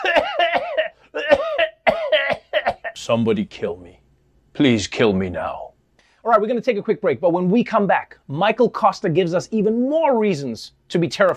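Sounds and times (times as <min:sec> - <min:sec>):
harsh voiced raspy coughing: 0:00.0 - 0:03.0
speech: 0:03.1 - 0:04.0, 0:04.6 - 0:05.6, 0:06.2 - 0:11.3.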